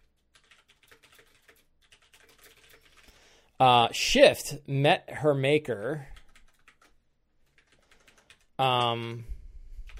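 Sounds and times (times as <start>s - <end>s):
typing on a computer keyboard: 0.0s - 3.1s, 6.2s - 9.0s
speech: 3.6s - 6.2s, 8.6s - 9.3s.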